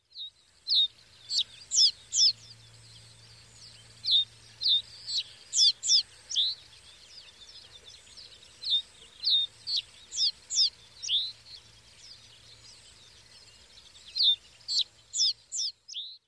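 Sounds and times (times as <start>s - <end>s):
common reed bunting singing: 0.5s - 16.2s.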